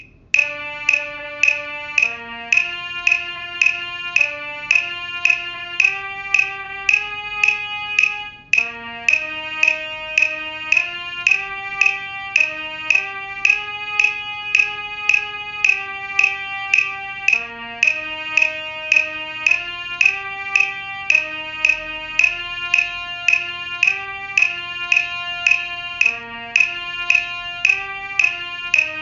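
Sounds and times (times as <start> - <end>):
trumpet: 0.4 - 28.9.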